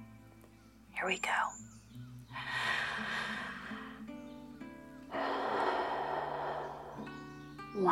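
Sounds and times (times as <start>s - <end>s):
speech: 1.0s - 1.7s, 7.8s - 7.9s
deep human breaths in a guided breathing exercise: 2.3s - 4.1s, 5.0s - 7.4s.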